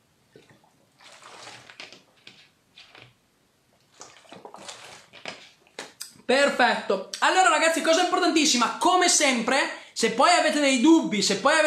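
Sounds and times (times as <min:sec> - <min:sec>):
person sipping water: 0:00.3 - 0:06.3
speech: 0:06.3 - 0:11.6.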